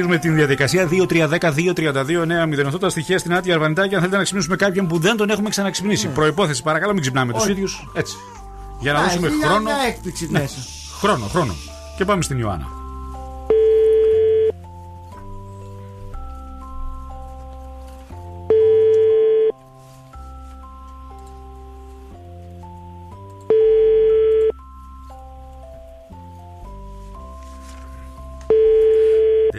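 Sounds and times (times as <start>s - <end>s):
speech: 0.0s - 12.8s
melodic music bed: 0.0s - 29.5s
outgoing phone call ringing tone: 13.5s - 14.6s, 18.5s - 19.6s, 23.5s - 24.6s, 28.5s - 29.5s.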